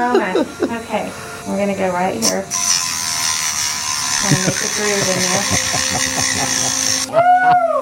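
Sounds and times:
laughter: 0:00.0 - 0:00.9, 0:04.2 - 0:07.7
speech: 0:00.0 - 0:02.8, 0:04.2 - 0:07.8
small rotary saw cutting extremely long fingernails: 0:02.2 - 0:07.1.

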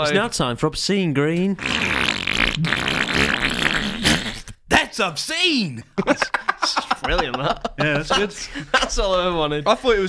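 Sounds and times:
speech: 0:00.0 - 0:03.9, 0:05.0 - 0:10.0
person blowing wet raspberry fart noises with their mouth as a jingle: 0:01.6 - 0:04.6
laughter: 0:06.0 - 0:09.3.

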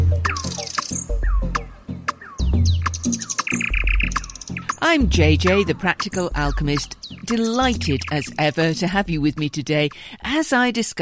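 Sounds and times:
nightingale singing: 0:00.0 - 0:10.0
speech: 0:04.9 - 0:10.9.

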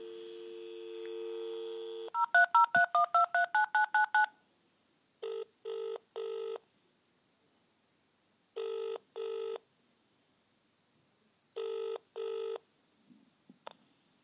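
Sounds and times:
steady telephone dial tone: 0:00.0 - 0:04.3, 0:05.2 - 0:06.6, 0:08.6 - 0:09.6, 0:11.6 - 0:12.6
telephone keypad dialing beeps: 0:02.2 - 0:04.3.

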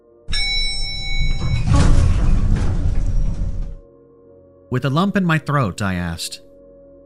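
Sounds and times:
elevator doors sliding shut with mechanical whir: 0:00.3 - 0:03.8
speech: 0:04.7 - 0:06.5.

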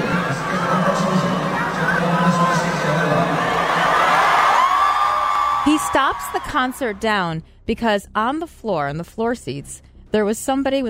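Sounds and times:
large concert crowd roaring and cheering: 0:00.0 - 0:07.0
shouts and whoops from a concert crowd: 0:03.0 - 0:06.8
speech: 0:05.9 - 0:10.8.

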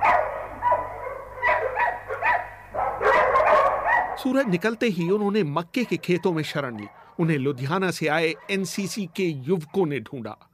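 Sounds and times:
faint steady hum: 0:00.0 - 0:05.6
dogs barking at night: 0:00.0 - 0:10.0
speech: 0:04.2 - 0:10.5.

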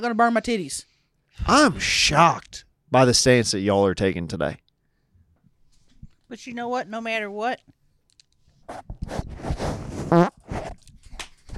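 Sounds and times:
speech: 0:00.0 - 0:04.6, 0:06.3 - 0:07.8, 0:08.7 - 0:10.4
loud buzzy drawn-out fart: 0:09.4 - 0:10.8.

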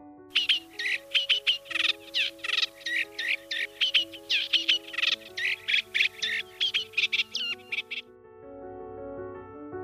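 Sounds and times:
soft sustained music: 0:00.0 - 0:09.8
reed warbler singing: 0:00.3 - 0:08.0.

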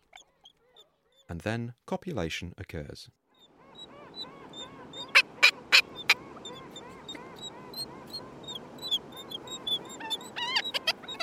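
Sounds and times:
speech: 0:01.4 - 0:03.2
female Black-legged Kittiwake high-pitched food-begging calls: 0:03.6 - 0:11.1
male Black-legged Kittiwake loud harsh coughing calls while shaking his head: 0:09.9 - 0:11.1.

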